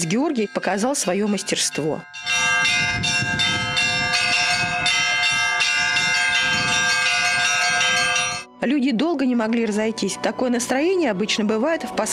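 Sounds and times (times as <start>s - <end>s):
speech: 0.0s - 3.4s, 8.6s - 12.1s
festive church bells pealing: 0.0s - 8.5s.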